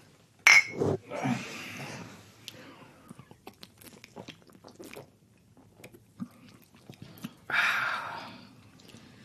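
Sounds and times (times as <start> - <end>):
beer glasses clinking in a toast: 0.4 - 0.8
slurping and swallowing of Oberdorfer Helles beer: 3.1 - 7.5.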